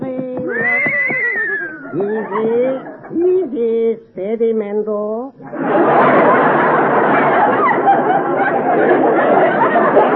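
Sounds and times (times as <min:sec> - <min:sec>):
horse whinnying loudly: 0:00.5 - 0:02.0
laughter: 0:00.5 - 0:03.5, 0:05.4 - 0:10.1
speech: 0:02.0 - 0:10.1.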